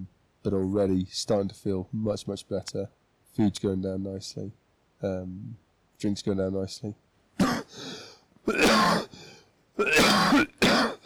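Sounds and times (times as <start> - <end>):
speech: 0.4 - 7.0
man clearing throat: 7.4 - 7.8, 8.5 - 9.1, 9.8 - 11.0
man coughing: 7.4 - 7.8, 8.5 - 9.1, 9.8 - 11.0.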